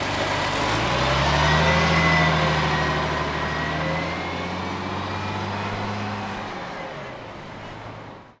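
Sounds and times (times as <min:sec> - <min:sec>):
truck pulling away: 0:00.0 - 0:08.3.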